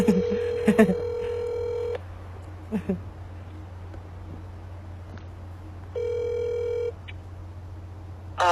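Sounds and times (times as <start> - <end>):
telephone tones as an incoming call is dialed and connects: 0.0 - 2.0, 6.0 - 7.0
low steady hum: 0.0 - 8.5.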